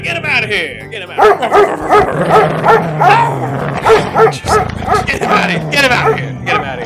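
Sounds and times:
speech: 0.0 - 6.8
dog barking: 1.2 - 5.2, 6.0 - 6.8.

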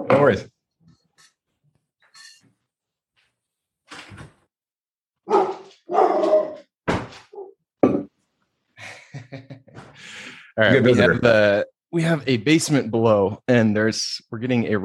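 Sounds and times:
speech: 0.1 - 0.6, 9.3 - 14.8
dog barking at visitor in house: 5.3 - 6.6.

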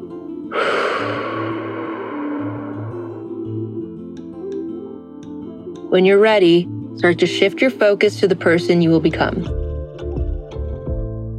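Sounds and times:
deep breath in and slow exhale: 0.5 - 3.8
speech: 5.9 - 9.6.

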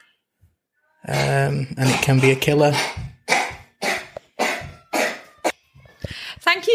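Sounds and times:
speech: 1.0 - 3.0
child with a cold coughing: 1.1 - 5.4
child's wheezy throaty sound: 1.1 - 5.5.

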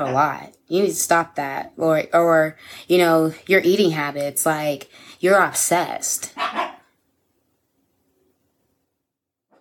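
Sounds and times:
speech: 0.0 - 6.6
dog barking: 6.3 - 7.0.

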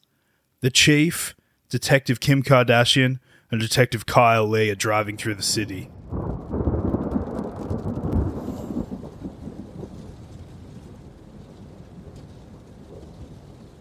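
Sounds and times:
speech: 0.6 - 6.2
deep roll of thunder: 4.8 - 13.7
steady heavy rain in a city: 5.1 - 13.7.

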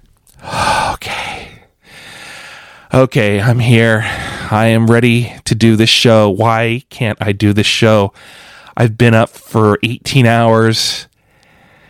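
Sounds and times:
person taking a deep breath: 0.4 - 2.9, 4.0 - 4.6, 8.2 - 8.8, 11.2 - 11.8
speech: 2.9 - 11.1.

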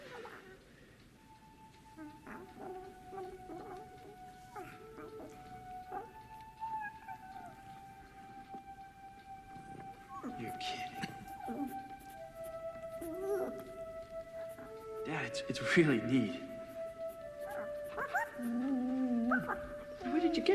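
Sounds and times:
steady hiss: 0.0 - 20.5
dog howling and whining: 1.9 - 8.8, 9.4 - 15.0, 17.3 - 20.5
speech: 15.4 - 16.4.

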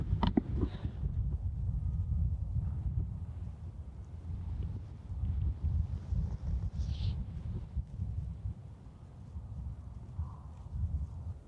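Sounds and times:
outdoor wind rumbling and buffeting at a farm on a cold day: 0.0 - 11.4.

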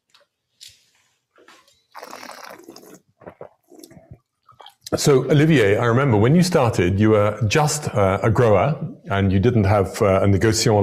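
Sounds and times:
wine poured from a bottle during a tasting: 1.9 - 4.8
speech: 4.9 - 10.8.

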